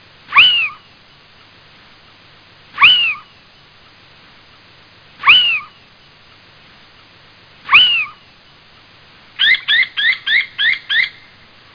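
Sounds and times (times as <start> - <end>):
little owl Athene noctua: 0.3 - 1.0, 2.8 - 3.4, 5.2 - 5.9, 7.6 - 8.3, 9.4 - 11.3.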